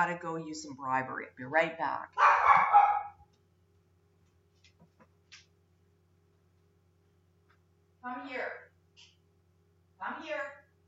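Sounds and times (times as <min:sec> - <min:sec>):
speech: 0:00.0 - 0:02.6, 0:08.0 - 0:08.6
dog barking at passersby: 0:02.2 - 0:03.2.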